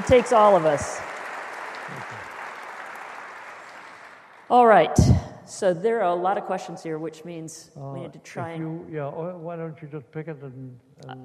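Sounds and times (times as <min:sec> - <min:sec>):
audience applause: 0:00.0 - 0:04.6
speech: 0:00.1 - 0:01.1, 0:04.5 - 0:11.2.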